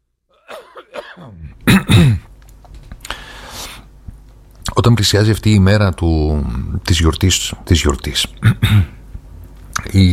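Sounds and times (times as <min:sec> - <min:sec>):
person coughing harshly: 0:00.4 - 0:02.3, 0:08.4 - 0:09.0
speech: 0:00.8 - 0:02.2, 0:04.8 - 0:09.0, 0:09.9 - 0:10.1.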